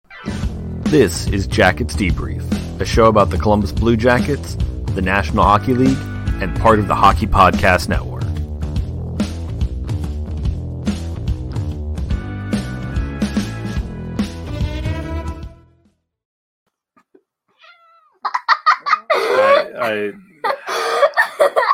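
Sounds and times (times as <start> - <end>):
busy music: 0.2 - 15.7
speech: 0.9 - 8.1
cat meowing in wavering cries: 17.5 - 18.3
child laughing: 18.0 - 21.7.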